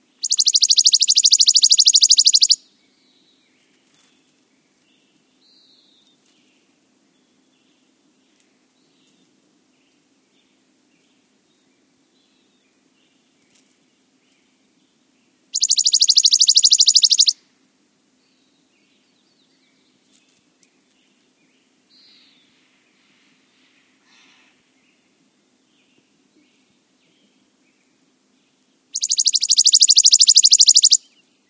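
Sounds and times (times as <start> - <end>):
Chipping Sparrow singing: 0.2 - 2.6, 15.6 - 17.4, 29.0 - 31.2.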